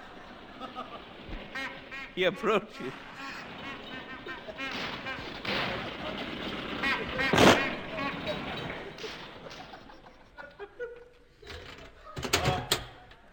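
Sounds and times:
car engine rattling and churning: 0.0 - 10.6
clattering noise of a car stopping: 0.0 - 13.2
laughter: 0.0 - 13.3
speech: 2.2 - 3.4
sharp bang: 2.8 - 9.5.

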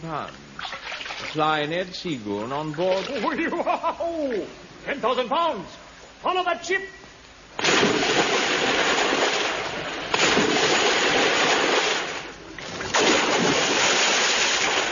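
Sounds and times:
speech: 0.1 - 7.0
laughter: 3.0 - 4.5
loud splashes into water: 7.6 - 14.8.

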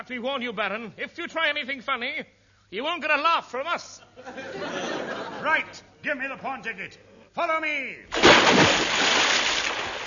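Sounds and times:
speech: 0.0 - 9.2
laughter: 4.0 - 5.9
water splashing as people plunge into the Atlantic: 8.1 - 10.0.

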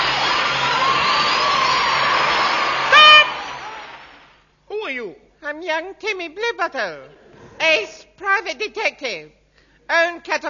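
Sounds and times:
prerecorded applause clapping: 0.0 - 4.4
prerecorded crowd cheering: 0.0 - 4.4
speech: 4.9 - 10.4.

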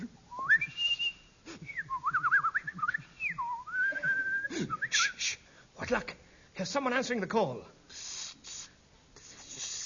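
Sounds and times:
person whistling a short melodic tune: 0.3 - 5.4
speech: 5.9 - 7.8.

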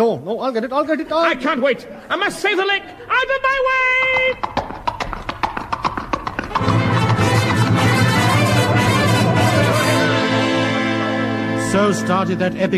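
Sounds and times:
speech: 0.0 - 4.7, 11.7 - 12.7
galloping hoofbeats: 3.5 - 9.4
dense wash of music: 6.6 - 12.7.

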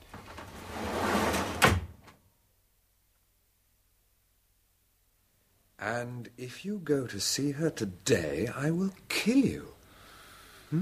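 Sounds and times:
automatic door sliding open with a mechanical whoosh: 0.1 - 1.9
speech: 5.8 - 9.8.

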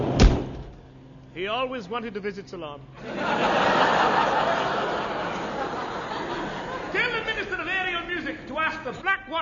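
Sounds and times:
door thudding shut: 0.1 - 0.8
speech: 1.4 - 4.8, 8.5 - 9.4
laughter: 2.9 - 7.7.

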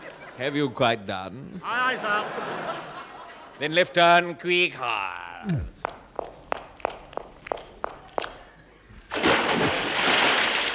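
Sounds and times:
laughter: 0.0 - 3.8
speech: 0.4 - 2.9, 3.6 - 5.7
footsteps on a hard surface: 5.7 - 8.4
person plunging into water with a splash: 9.1 - 10.7.

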